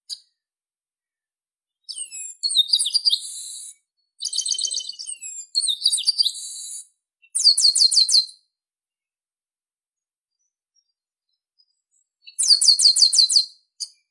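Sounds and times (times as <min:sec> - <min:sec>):
brown-headed blackbird singing: 0:01.8 - 0:08.4, 0:10.3 - 0:14.0.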